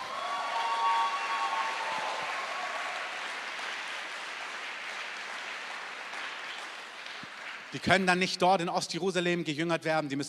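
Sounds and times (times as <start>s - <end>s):
audience applause: 0.0s - 8.1s
speech: 7.7s - 10.2s.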